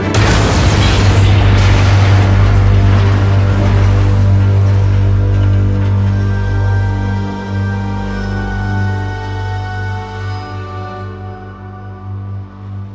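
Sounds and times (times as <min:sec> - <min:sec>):
spaceship engine explosion boom: 0:00.2 - 0:05.7
deep rumbling roar with low hum: 0:00.2 - 0:12.9.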